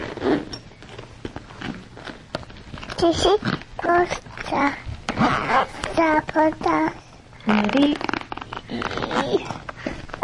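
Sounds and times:
zipper being pulled up in short halting tugs: 0:00.0 - 0:00.6, 0:05.1 - 0:05.9, 0:07.5 - 0:09.6
speech: 0:03.0 - 0:04.8, 0:05.5 - 0:08.0.

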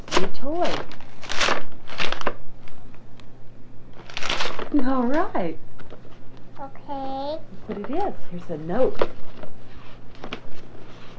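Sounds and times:
soft wrapping paper rustling: 0:00.0 - 0:02.8, 0:04.0 - 0:04.7, 0:08.9 - 0:11.1
wrapping paper torn off a child's present: 0:00.0 - 0:02.8, 0:04.0 - 0:04.7
speech: 0:00.2 - 0:01.6, 0:04.8 - 0:05.7, 0:06.6 - 0:09.4.

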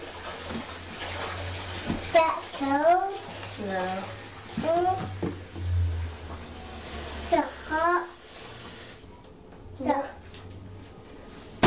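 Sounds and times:
running water filling a bathtub: 0:00.0 - 0:09.2
speech: 0:02.2 - 0:05.2, 0:07.3 - 0:08.1
low hum: 0:05.2 - 0:07.3.

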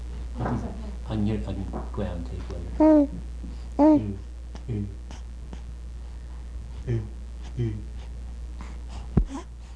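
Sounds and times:
speech: 0:00.5 - 0:05.2, 0:06.8 - 0:07.9
nasal breathing with faint voiced hum: 0:04.6 - 0:09.7.

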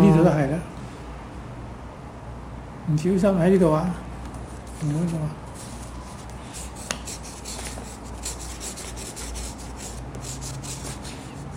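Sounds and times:
speech: 0:00.3 - 0:00.8, 0:02.9 - 0:04.0, 0:04.8 - 0:05.4
pen scratching on paper writing the letter P: 0:06.6 - 0:11.5.

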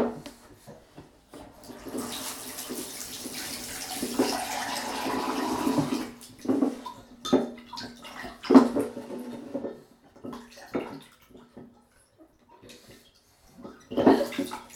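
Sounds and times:
water running into a jug: 0:01.5 - 0:11.9.

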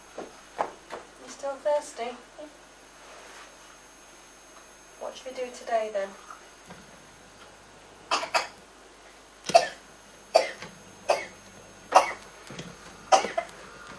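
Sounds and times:
speech: 0:01.6 - 0:02.6, 0:05.1 - 0:06.8
person coughing dry coughs: 0:08.1 - 0:08.6, 0:09.5 - 0:11.3, 0:11.9 - 0:12.2, 0:13.1 - 0:13.5.

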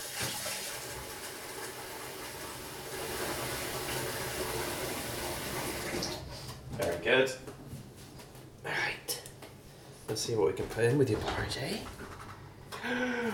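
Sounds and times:
water running from a tap while something is rinsed: 0:00.0 - 0:06.3
speech: 0:07.0 - 0:07.5, 0:10.1 - 0:12.2, 0:12.8 - 0:13.3.

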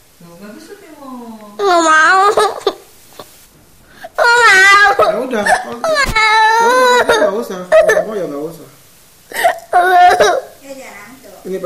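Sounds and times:
speech: 0:00.2 - 0:01.9, 0:05.3 - 0:06.1
young child crying in high wavering whimpers and wails: 0:01.6 - 0:02.8, 0:04.2 - 0:08.1, 0:09.3 - 0:10.6.

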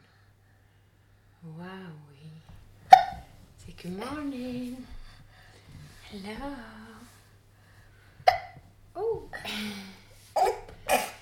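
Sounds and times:
soft breathy noise: 0:00.0 - 0:01.4, 0:02.4 - 0:08.3, 0:09.3 - 0:11.1
baby hiccuping: 0:02.9 - 0:03.3, 0:08.3 - 0:08.6, 0:10.4 - 0:11.1
speech: 0:03.7 - 0:05.0, 0:06.1 - 0:06.8.

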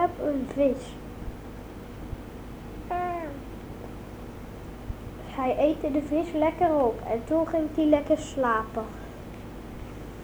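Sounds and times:
low steady hum: 0:00.0 - 0:10.2
speech: 0:00.4 - 0:01.0, 0:05.4 - 0:09.0
single short cat meow: 0:02.9 - 0:03.5.

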